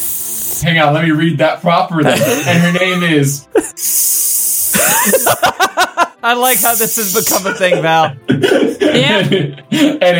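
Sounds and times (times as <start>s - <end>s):
person imitating a snake hissing: 0.0s - 0.6s, 3.7s - 5.4s, 6.4s - 7.5s
speech: 0.6s - 10.1s
laughter: 2.0s - 3.8s, 4.7s - 6.2s, 7.0s - 10.1s.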